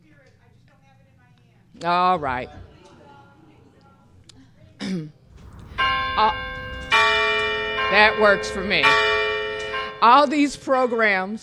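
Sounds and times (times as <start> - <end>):
speech: 1.8 - 2.7, 6.2 - 6.5, 7.9 - 9.2, 10.0 - 11.4
bell ringing: 5.3 - 11.4.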